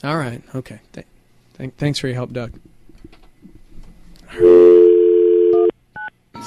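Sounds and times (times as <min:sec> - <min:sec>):
speech: 0:00.0 - 0:02.7
steady loud phone tone: 0:04.3 - 0:06.4.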